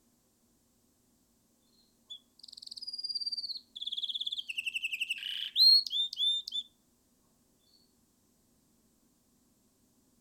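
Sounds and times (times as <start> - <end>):
canary singing: 1.7 - 6.7.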